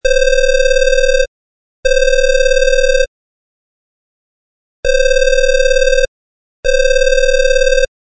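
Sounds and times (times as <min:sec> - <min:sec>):
phone ringing: 0:00.0 - 0:03.1, 0:04.8 - 0:07.9.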